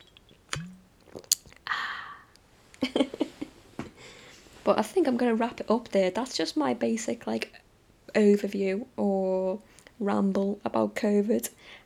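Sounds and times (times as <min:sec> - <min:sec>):
slurp: 0:00.0 - 0:01.6
person swallowing beer: 0:00.0 - 0:01.8
person sipping beer: 0:00.0 - 0:02.4
speech: 0:04.7 - 0:07.6, 0:08.2 - 0:11.8.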